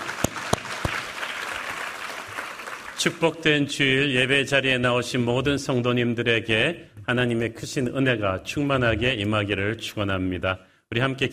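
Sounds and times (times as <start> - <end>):
crowd applauding in a large room: 0.0 - 3.4
speech: 3.0 - 11.3.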